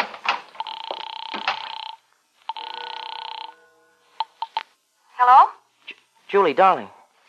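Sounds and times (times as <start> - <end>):
knocks and clicks: 0.0 - 1.9
telephone ringing: 0.5 - 4.6
speech: 6.3 - 7.2.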